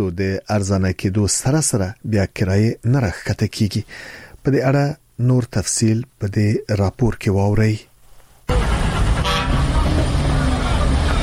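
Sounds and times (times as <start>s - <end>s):
speech: 0.0s - 7.9s
car horn tooting at a bus station: 8.5s - 10.0s
steady traffic engine and road noise at a bus station: 8.5s - 11.2s.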